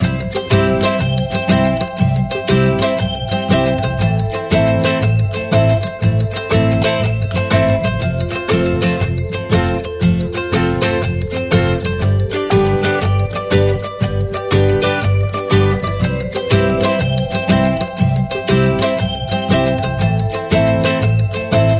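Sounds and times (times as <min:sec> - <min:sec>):
happy Christmas ukulele music without drums or melody: 0:00.0 - 0:21.7.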